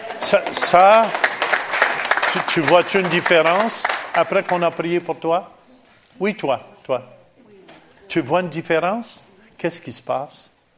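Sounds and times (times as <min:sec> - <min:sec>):
audience applauding at a prayer service: 0:00.0 - 0:05.1
speech: 0:00.2 - 0:01.2, 0:02.3 - 0:05.6, 0:06.2 - 0:07.2, 0:08.1 - 0:10.5.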